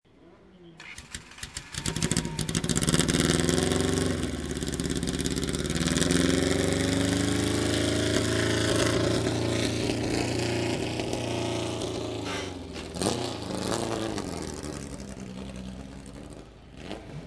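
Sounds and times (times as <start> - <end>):
engine revving: 0.8 - 17.2.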